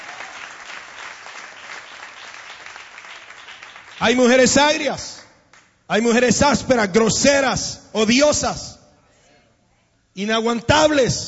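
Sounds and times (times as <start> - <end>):
audience applause: 0.0 - 4.5
speech: 4.0 - 5.1, 5.9 - 8.8, 10.2 - 11.2.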